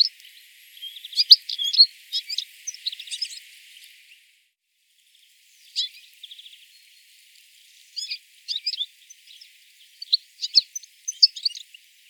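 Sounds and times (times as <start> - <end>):
European goldfinch (Carduelis carduelis) twittering calls: 0.0 - 3.5, 5.6 - 6.6, 8.0 - 11.8.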